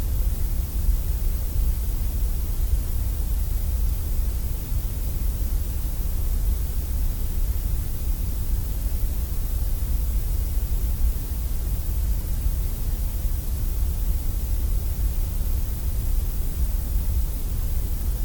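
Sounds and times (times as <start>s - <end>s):
grey noise hiss with low rumble: 0.0s - 18.2s.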